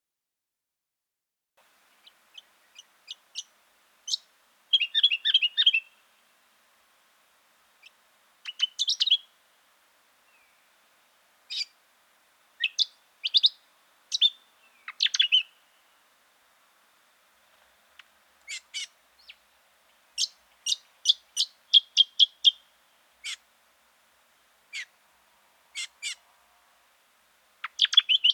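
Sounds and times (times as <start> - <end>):
brown honeyeater calling: 1.9 - 6.0, 7.8 - 9.3, 11.5 - 11.8, 12.6 - 15.7, 18.4 - 19.4, 20.2 - 23.5, 24.7 - 24.9, 25.7 - 26.2, 27.6 - 28.3.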